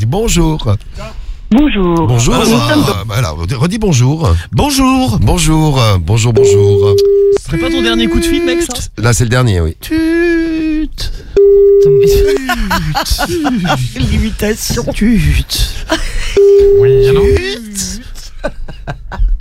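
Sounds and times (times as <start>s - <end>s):
speech: 0.1s - 19.4s
voice mimicking a telephone ringing tone: 11.5s - 12.4s, 16.4s - 17.5s
laughter from several people: 12.0s - 15.2s, 15.8s - 16.4s, 18.2s - 19.4s.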